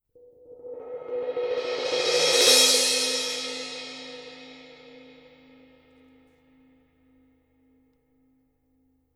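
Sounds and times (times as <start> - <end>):
black crash cymbal: 0.4 - 5.6.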